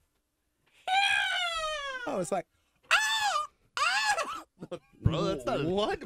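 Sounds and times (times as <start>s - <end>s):
person imitating a bald eagle screech: 0.8s - 2.2s, 2.9s - 4.4s
speech: 2.1s - 2.6s, 4.6s - 6.0s.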